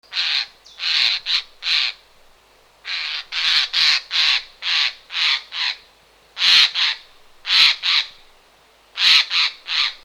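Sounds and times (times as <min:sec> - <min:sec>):
jay calling: 0:00.1 - 0:02.0, 0:02.8 - 0:05.8, 0:06.4 - 0:08.2, 0:09.0 - 0:10.0.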